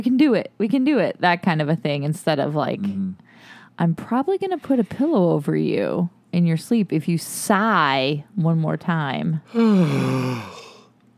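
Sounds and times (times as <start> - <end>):
speech: 0.0 - 10.6
person yawning: 9.5 - 10.9.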